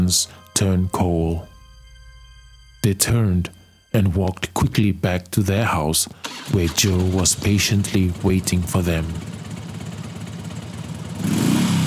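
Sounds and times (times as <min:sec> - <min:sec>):
speech: 0:00.1 - 0:01.5, 0:02.8 - 0:09.4
motorcycle engines revving and pulling away: 0:06.2 - 0:11.8.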